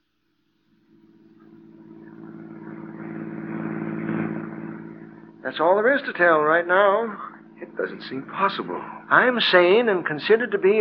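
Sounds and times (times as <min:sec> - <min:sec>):
car engine humming as the car is driven out into the country: 0:01.5 - 0:09.4
speech: 0:05.4 - 0:10.7.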